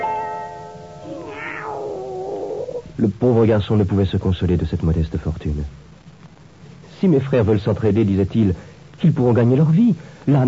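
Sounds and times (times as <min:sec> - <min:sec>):
cat meowing: 0:00.0 - 0:02.9
speech: 0:03.0 - 0:05.8, 0:07.0 - 0:10.4.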